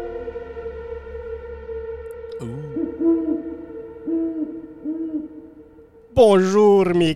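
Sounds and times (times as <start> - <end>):
owl hooting: 2.4 - 7.1
speech: 6.2 - 7.1.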